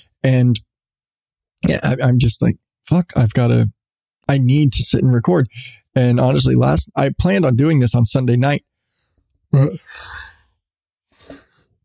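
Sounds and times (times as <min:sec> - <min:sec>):
speech: 0:00.0 - 0:00.7, 0:01.6 - 0:08.7, 0:09.5 - 0:10.3
person yawning: 0:09.6 - 0:10.5.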